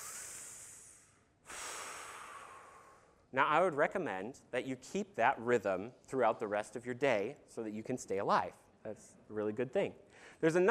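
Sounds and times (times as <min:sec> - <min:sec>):
slow breathing in and out during a guided group breathing exercise: 0:00.0 - 0:03.3, 0:10.0 - 0:10.4
speech: 0:03.3 - 0:10.6.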